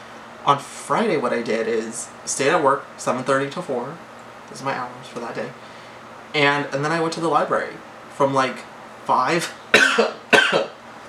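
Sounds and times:
speech: 0.4s - 5.7s, 6.3s - 10.7s
person coughing: 9.8s - 10.8s.

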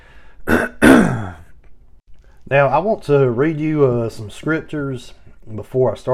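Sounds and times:
man clearing throat: 0.5s - 1.5s
speech: 2.5s - 6.1s.

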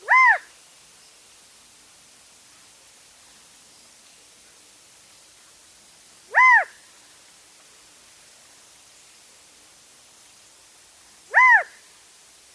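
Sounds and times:
Mountain Quail call: 0.0s - 0.5s, 6.3s - 6.8s, 11.3s - 11.8s
faint background hiss: 0.0s - 12.5s.

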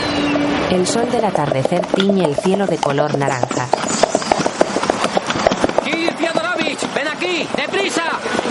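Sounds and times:
horse-drawn carriage hooves clopping: 0.1s - 8.4s
creaking tonal sound: 0.4s - 4.6s
speech: 0.7s - 3.7s.

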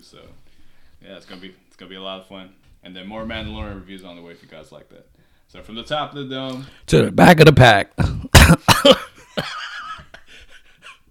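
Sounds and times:
speech: 0.0s - 9.1s
person clearing phlegm from throat: 8.0s - 9.6s
person coughing: 8.0s - 9.8s.

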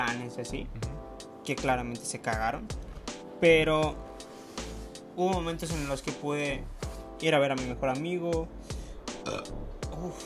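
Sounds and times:
speech: 0.0s - 8.6s, 9.2s - 10.2s
loud burp: 9.2s - 9.6s.

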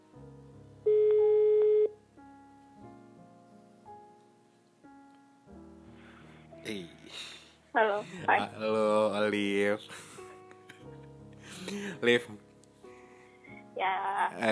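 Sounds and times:
outgoing phone call ringing tone: 0.9s - 1.9s
speech: 6.7s - 10.1s, 11.7s - 12.4s, 13.8s - 14.4s.

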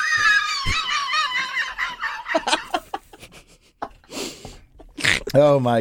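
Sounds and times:
person laughing with high squealing laughter: 0.1s - 4.1s
speech: 5.3s - 5.7s.

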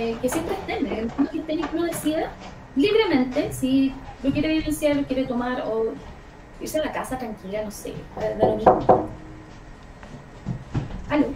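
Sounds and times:
speech: 0.0s - 9.2s, 11.1s - 11.3s
quiet hum: 0.0s - 11.3s
knocks on a door: 8.0s - 9.2s.

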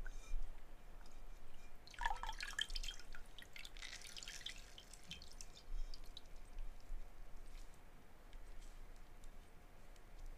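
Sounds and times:
low steady hum: 0.0s - 10.3s
bright trickling water: 1.8s - 7.0s
water splashing and dripping while played with: 1.9s - 6.5s.

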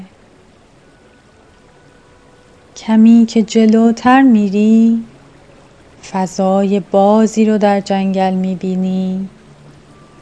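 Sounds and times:
stream water flowing: 0.0s - 10.2s
speech: 2.8s - 5.1s, 6.0s - 9.4s.

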